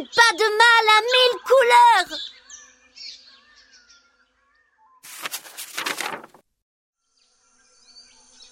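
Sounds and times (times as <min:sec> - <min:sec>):
speech: 0:00.0 - 0:02.4
birds chirping: 0:00.0 - 0:04.4
bird fluttering wings from branch to branch: 0:05.1 - 0:06.4.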